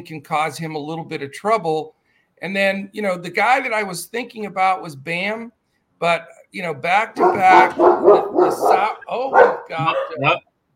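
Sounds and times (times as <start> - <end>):
speech: 0.0 - 10.5
dog barking excitedly at the mailman: 7.2 - 10.4.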